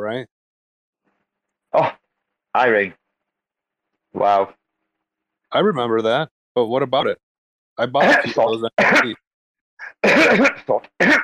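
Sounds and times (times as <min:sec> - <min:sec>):
speech: 0:00.0 - 0:00.4, 0:01.7 - 0:02.0, 0:02.6 - 0:03.0, 0:04.1 - 0:04.6, 0:05.5 - 0:07.2, 0:07.8 - 0:09.2, 0:09.8 - 0:11.2
loud throaty rasping coughs: 0:08.0 - 0:09.2, 0:09.8 - 0:11.2.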